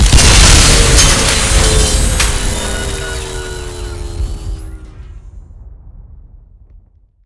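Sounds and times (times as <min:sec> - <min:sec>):
robot explosion: 0:00.0 - 0:05.4.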